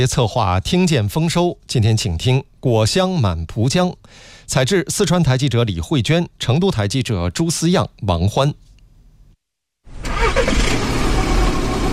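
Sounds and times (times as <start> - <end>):
speech: 0.0 - 8.6
car engine starting and running as the car sets off: 9.9 - 11.9.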